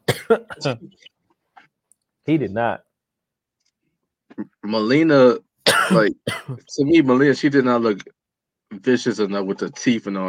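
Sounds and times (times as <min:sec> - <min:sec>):
person coughing harshly: 0:00.0 - 0:00.8, 0:05.7 - 0:06.6
speech: 0:00.3 - 0:01.2, 0:02.3 - 0:02.9, 0:04.4 - 0:10.2.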